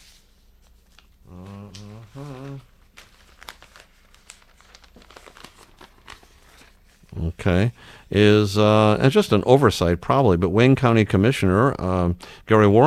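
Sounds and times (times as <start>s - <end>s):
paper rustling and crinkling as someone searches for a paper: 0.0s - 7.7s
short voiced hum: 1.2s - 2.7s
speech: 7.4s - 12.8s.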